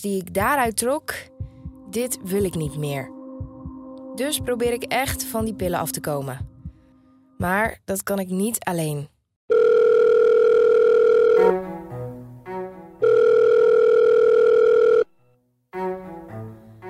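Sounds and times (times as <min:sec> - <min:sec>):
speech: 0:00.0 - 0:03.2, 0:04.2 - 0:06.5, 0:07.4 - 0:09.6
steady loud telephone dial tone: 0:09.5 - 0:11.5, 0:13.0 - 0:15.1.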